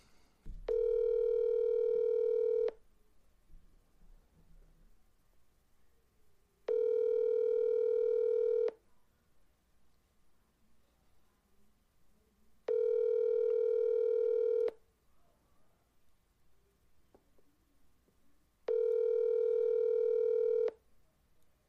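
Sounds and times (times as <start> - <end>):
electronic ringback tones of an outgoing phone call: 0.7 - 2.8, 6.7 - 8.8, 12.7 - 14.8, 18.7 - 20.8.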